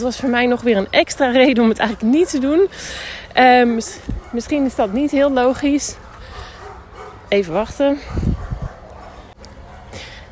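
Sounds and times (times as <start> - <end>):
speech: 0.0 - 6.0, 7.3 - 8.3
dog barking: 4.2 - 7.4, 8.0 - 9.9.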